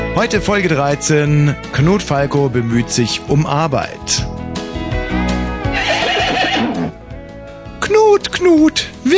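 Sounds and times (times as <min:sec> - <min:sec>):
speech: 0:00.2 - 0:04.4, 0:08.1 - 0:09.1
horse neighing: 0:05.7 - 0:07.0.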